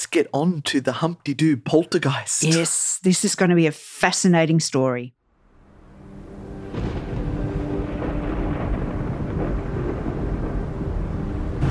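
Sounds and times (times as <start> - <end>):
speech: 0.1 - 5.2
thunder rumbling during a storm: 6.2 - 11.6.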